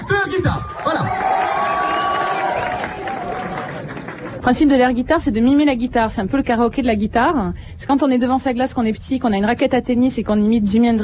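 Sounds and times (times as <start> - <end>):
crowd cheering and clapping at a live event: 0.0 - 4.6
speech: 0.3 - 1.3, 4.4 - 11.0.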